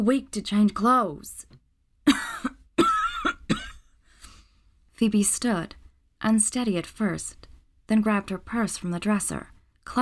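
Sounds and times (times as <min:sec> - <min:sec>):
speech: 0:00.0 - 0:01.5, 0:05.0 - 0:10.0
person coughing harshly with a wet rasp: 0:02.1 - 0:03.9.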